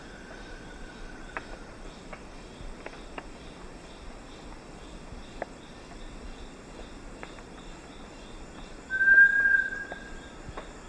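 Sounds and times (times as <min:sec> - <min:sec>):
constant high insect hum: 0:00.0 - 0:10.8
Bartlett's tinamou whistled note in eastern lowlands of South America: 0:08.9 - 0:10.0.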